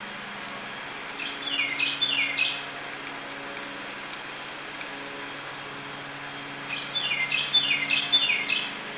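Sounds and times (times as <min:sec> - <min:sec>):
steady low rumbling hum: 0:00.0 - 0:08.9
bird giving high rising-and-falling chirps: 0:01.2 - 0:02.8, 0:06.7 - 0:08.8.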